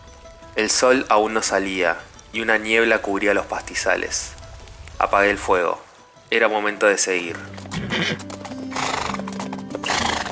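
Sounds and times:
speech: 0:00.6 - 0:04.4, 0:05.0 - 0:08.4
horse galloping: 0:07.2 - 0:10.3.

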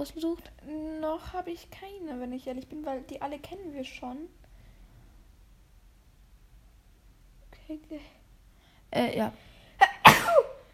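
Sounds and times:
speech: 0:00.0 - 0:04.4, 0:07.7 - 0:08.2, 0:08.9 - 0:09.5
single sharp sneeze with inhaled build-up: 0:09.8 - 0:10.7.

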